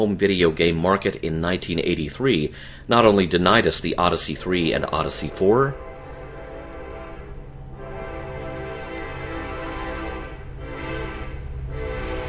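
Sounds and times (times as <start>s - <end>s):
speech: 0.0s - 5.8s
heavy rumble of a passing train: 3.6s - 12.2s
train horn blaring: 5.0s - 12.2s.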